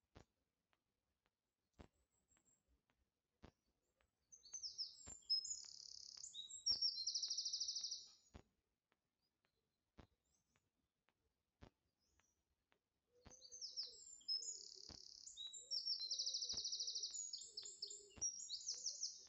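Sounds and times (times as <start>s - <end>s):
bird singing high bright phrases with fast trill in a safari park: 4.3s - 8.3s, 13.3s - 19.2s.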